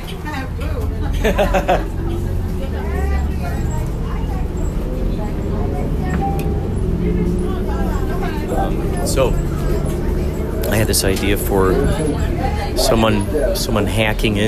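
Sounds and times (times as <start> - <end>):
low engine rumble inside a city bus: 0.0 - 14.4
overlapping murmurs of passengers talking: 0.0 - 14.4
speech: 0.6 - 2.0, 8.7 - 9.9, 10.7 - 14.4
laughter: 0.9 - 2.6.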